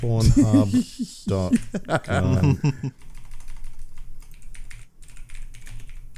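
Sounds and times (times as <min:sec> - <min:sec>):
speech: 0:00.0 - 0:03.1
laughter: 0:00.2 - 0:03.0
typing on a mechanical keyboard: 0:03.0 - 0:06.1.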